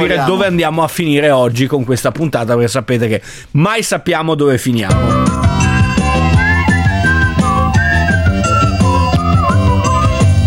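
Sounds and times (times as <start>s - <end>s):
speech: 0.0s - 5.7s
loud busy instrumental backing with a steady rhythmic beat: 4.9s - 10.4s
person whistling a bright melody: 5.7s - 10.4s.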